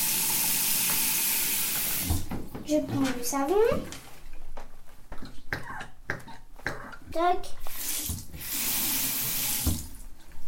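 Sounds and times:
tap water running while hands are washed: 0.0 - 2.5, 7.6 - 10.1
speech: 2.7 - 4.0, 7.1 - 7.6.

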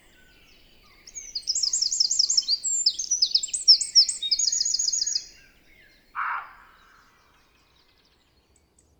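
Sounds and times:
wild bird lower harsh call in a valley: 0.0 - 5.5
wild bird high trilling song in a valley: 0.0 - 7.4.

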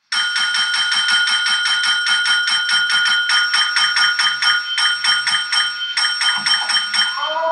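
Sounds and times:
small hand bell ringing, rung by a man in a wheelchair: 0.1 - 7.4.

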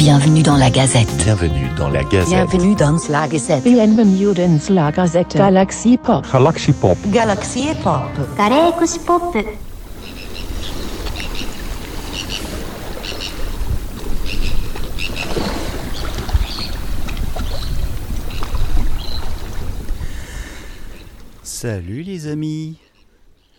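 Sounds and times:
speech: 0.0 - 9.7, 21.6 - 22.8
wind buffeting the microphone outdoors: 9.4 - 21.4.

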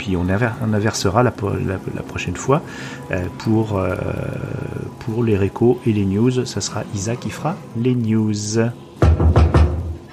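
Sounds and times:
speech: 0.0 - 9.3
loud solid knocks on a door: 9.0 - 10.0.

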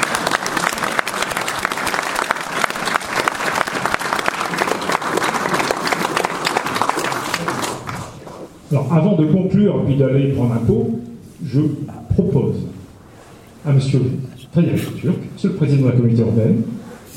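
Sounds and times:
audience applause: 0.0 - 8.3
speech: 8.7 - 12.6, 13.7 - 16.8.

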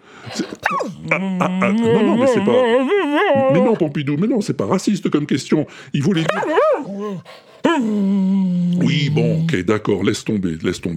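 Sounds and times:
dog yelping and whining: 0.3 - 3.8, 6.2 - 8.2
dog howling: 0.3 - 3.9, 6.2 - 9.5
speech: 0.4 - 10.9.

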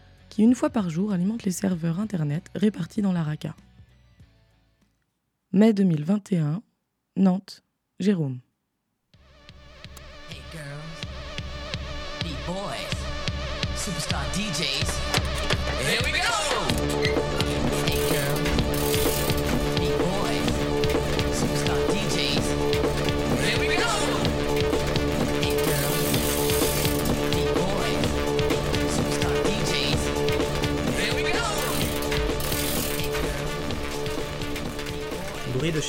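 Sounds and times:
speech: 0.4 - 3.7, 5.5 - 8.4, 13.8 - 15.2, 35.7 - 35.8
dense hissing mechanical background: 9.6 - 35.5
bicycle pedals turning with ratcheting freewheel: 16.7 - 21.3, 24.6 - 28.8, 31.1 - 34.9.

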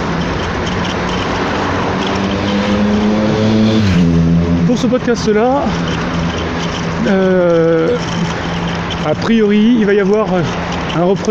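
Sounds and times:
car engine rising and falling: 0.0 - 9.0
traffic noise on a busy road: 0.0 - 11.3
speech: 4.8 - 6.1, 7.0 - 8.3, 9.0 - 11.3.

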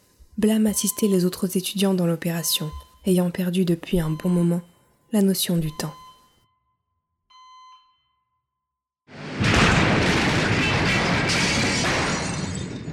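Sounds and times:
speech: 0.4 - 6.0
faint electronic beeps: 0.7 - 1.5, 2.3 - 4.8, 5.5 - 6.5
loud explosion inside an infirmary: 9.1 - 12.9.

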